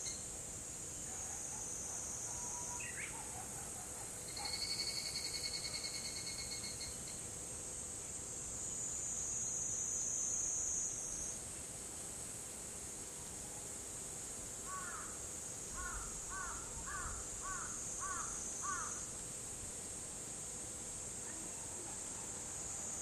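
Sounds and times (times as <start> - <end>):
higurashi cicada giving high pulsed ringing notes: 0.0 - 3.2, 4.1 - 11.5, 14.6 - 21.4
steady high hiss: 0.0 - 3.2, 4.2 - 23.0.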